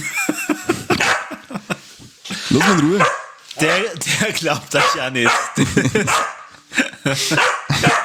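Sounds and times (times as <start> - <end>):
laughter: 0.0 - 8.0
dog barking and yipping: 1.0 - 1.4, 2.5 - 4.0, 4.7 - 6.6, 7.3 - 8.0
speech: 2.5 - 8.0.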